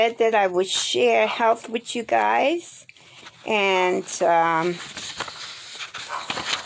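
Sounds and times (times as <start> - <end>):
speech: 0.0 - 2.8, 3.4 - 5.1
dog barking in the background: 6.1 - 6.4.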